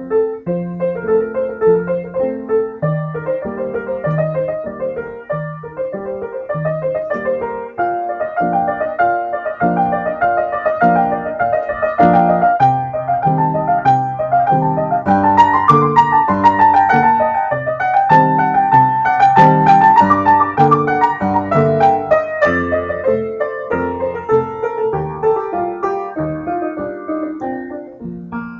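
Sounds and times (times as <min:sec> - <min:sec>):
keyboard prelude in G minor: 0:00.3 - 0:27.9.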